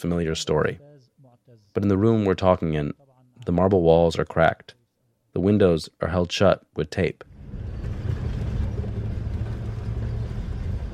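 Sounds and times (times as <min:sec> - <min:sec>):
speech: 0:00.0 - 0:00.9, 0:01.8 - 0:07.3
old 1970s Mercedes car engine humming while driving: 0:07.3 - 0:10.9.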